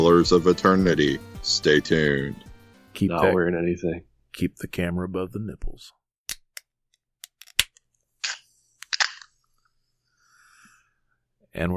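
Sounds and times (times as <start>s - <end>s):
speech: 0.0s - 2.4s, 3.0s - 6.0s, 11.6s - 11.7s
energy drink can cracking open: 7.2s - 9.3s.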